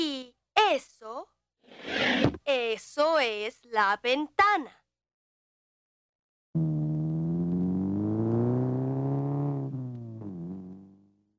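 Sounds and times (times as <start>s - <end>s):
speech: 0.7s - 4.8s
car engine revving: 6.6s - 11.3s.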